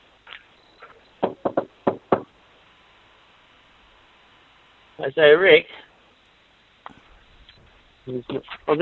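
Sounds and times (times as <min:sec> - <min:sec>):
knocking on a wooden door: 0:01.2 - 0:02.3
speech: 0:05.0 - 0:05.9, 0:08.0 - 0:08.8.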